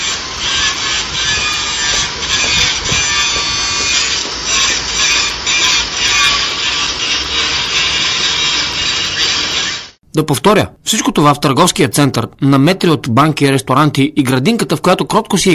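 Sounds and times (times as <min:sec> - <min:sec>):
road construction machinery blowing away debris before asphalt laying: 0:00.0 - 0:10.0
speech: 0:10.2 - 0:15.5.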